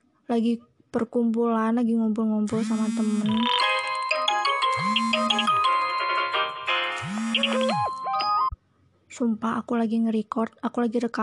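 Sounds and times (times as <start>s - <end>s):
speech: 0.3s - 3.6s, 4.8s - 5.7s, 7.0s - 7.9s, 9.2s - 11.2s
mobile phone ringtone during a recording session: 2.7s - 8.6s.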